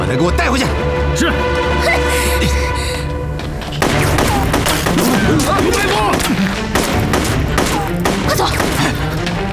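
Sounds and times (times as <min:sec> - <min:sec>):
speech: 0:00.1 - 0:02.6
overlapping gunshots during a chaotic chase: 0:03.8 - 0:09.4.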